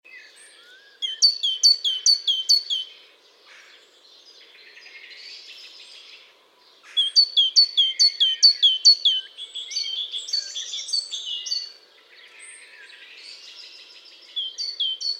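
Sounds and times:
great tit calls: 0:00.6 - 0:02.9, 0:06.8 - 0:11.7, 0:14.4 - 0:15.1.

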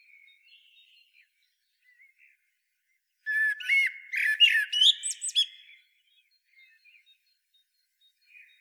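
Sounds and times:
common blackbird singing a mellow fluted warble: 0:03.3 - 0:05.9.

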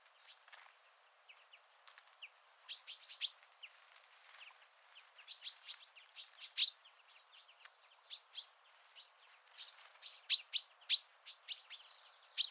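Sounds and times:
common chaffinch short bright chip calls: 0:01.2 - 0:01.6, 0:02.7 - 0:03.4, 0:05.3 - 0:12.4.

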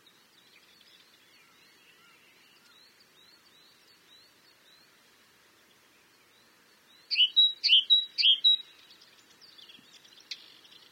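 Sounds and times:
great tit two-toned calls: 0:07.1 - 0:08.7.

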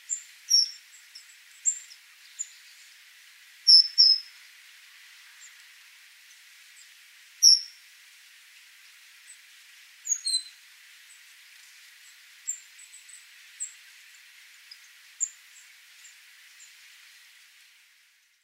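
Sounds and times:
faint background hiss: 0:00.0 - 0:18.4
Parus major great tit calls: 0:00.1 - 0:03.0, 0:03.7 - 0:04.3, 0:07.4 - 0:07.8, 0:10.1 - 0:10.6.

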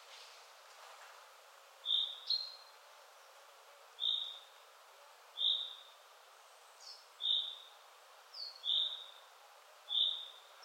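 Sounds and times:
light background hiss: 0:00.0 - 0:10.6
common chaffinch Fringilla coelebs thin tonal chirps: 0:01.8 - 0:02.7, 0:04.0 - 0:04.5, 0:06.8 - 0:07.7, 0:08.4 - 0:09.2, 0:09.9 - 0:10.6.

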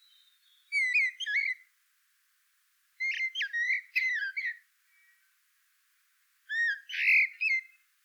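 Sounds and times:
Turdus merula common blackbird song: 0:00.0 - 0:01.7, 0:03.0 - 0:05.3, 0:06.5 - 0:07.8.

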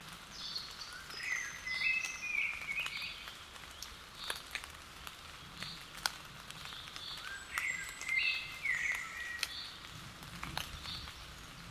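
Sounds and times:
Common blackbird Turdus merula song with fluty sliding notes: 0:00.3 - 0:04.5, 0:06.6 - 0:09.9, 0:10.6 - 0:11.6.

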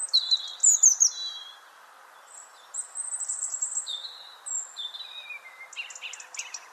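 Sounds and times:
European robin Erithacus rubecula singing: 0:00.0 - 0:06.7
soft continuous background hiss: 0:00.0 - 0:06.7.

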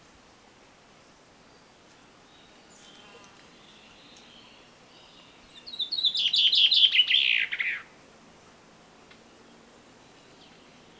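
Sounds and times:
common chaffinch Fringilla coelebs singing: 0:01.5 - 0:07.9.

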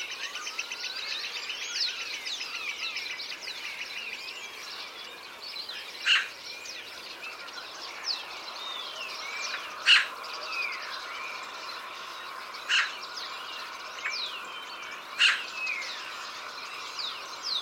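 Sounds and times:
small birds whistling and twittering: 0:00.0 - 0:17.6
Eurasian magpie Pica pica uttering short noisy chak notes: 0:15.2 - 0:15.4.

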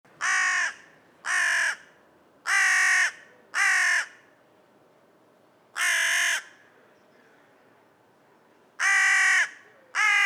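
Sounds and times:
carrion crow Corvus corone giving harsh hoarse caws: 0:00.2 - 0:01.9, 0:02.5 - 0:04.2, 0:05.8 - 0:06.6, 0:08.8 - 0:10.2.

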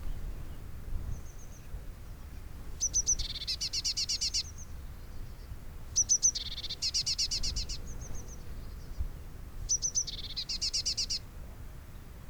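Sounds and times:
soft low background noise: 0:00.0 - 0:12.2
Eurasian blue tit singing a trembling trill: 0:02.8 - 0:09.0, 0:09.7 - 0:11.2.

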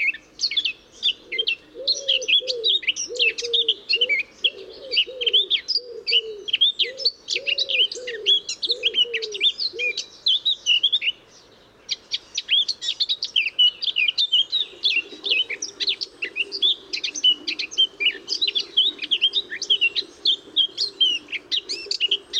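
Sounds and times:
Eurasian blackcap Sylvia atricapilla singing a rapid warble: 0:00.0 - 0:22.3
low hollow cooing: 0:01.0 - 0:10.0, 0:14.6 - 0:22.3.

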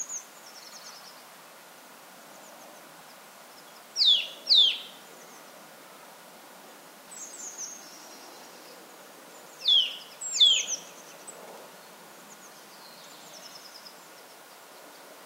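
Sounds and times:
Eurasian nuthatch Sitta europaea call: 0:04.0 - 0:05.0.

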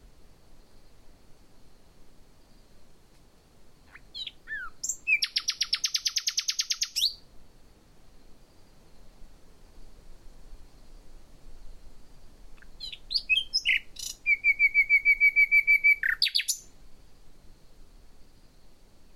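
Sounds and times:
common nightingale Luscinia megarhynchos song with buzzy trill and whistled notes: 0:00.0 - 0:19.1.

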